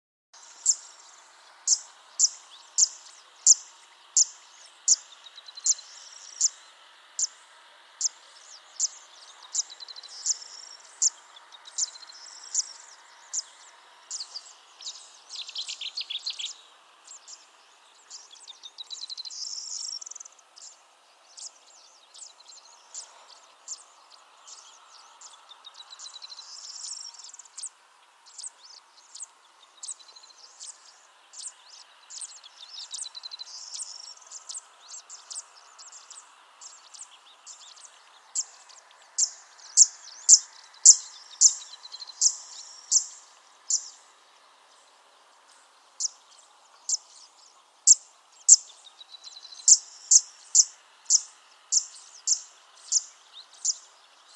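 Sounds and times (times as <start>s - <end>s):
reed warbler singing: 0.4s - 54.3s.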